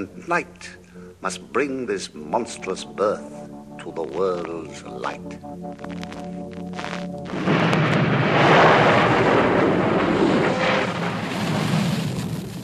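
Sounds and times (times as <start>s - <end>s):
speech: 0.0s - 7.6s
deep rolling rumbles of thunder: 7.3s - 12.6s
loud sustained storm roar: 7.3s - 12.6s.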